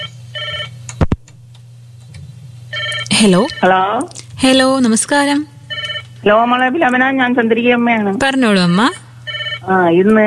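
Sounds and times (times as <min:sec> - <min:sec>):
telephone ringing with an incoming call on a call-in line: 0:00.0 - 0:00.8, 0:02.7 - 0:04.9, 0:05.7 - 0:06.2, 0:08.7 - 0:09.8
low steady hum: 0:00.0 - 0:10.2
speech: 0:03.2 - 0:05.5, 0:06.2 - 0:09.0, 0:09.6 - 0:10.2.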